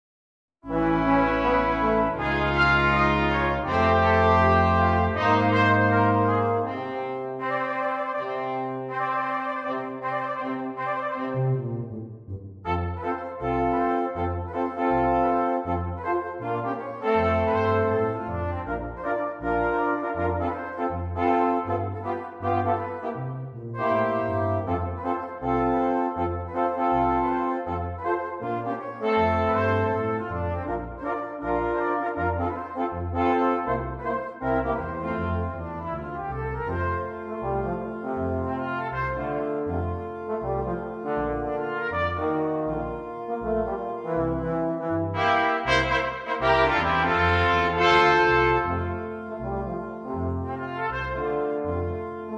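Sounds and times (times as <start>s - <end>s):
instrumental Christmas song: 0.7s - 52.3s.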